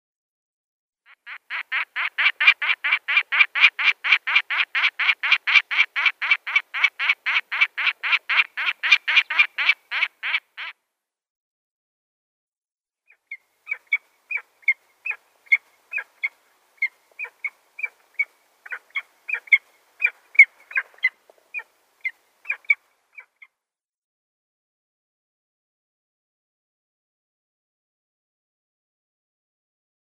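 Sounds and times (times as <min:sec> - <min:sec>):
Barbary falcon calling: 0:01.1 - 0:10.8, 0:13.1 - 0:23.5.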